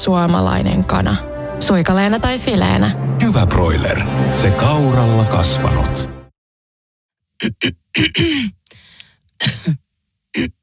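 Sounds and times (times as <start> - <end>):
speech: 0.0 - 6.1, 7.4 - 8.6, 9.4 - 9.8, 10.4 - 10.6
person with a dry cough coughing harshly: 7.4 - 8.6, 9.4 - 9.8, 10.4 - 10.6.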